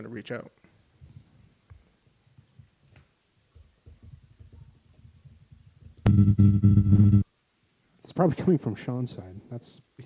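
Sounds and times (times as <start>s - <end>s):
speech: 0.0s - 0.7s, 8.1s - 9.9s
faint low pulsing: 6.0s - 7.2s
buzzing hum: 6.0s - 7.3s
loud harsh static: 6.0s - 7.3s.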